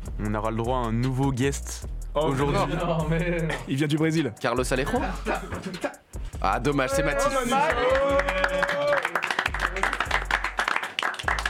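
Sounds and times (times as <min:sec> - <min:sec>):
speech: 0:00.2 - 0:08.7
applause from a small group: 0:07.5 - 0:11.4.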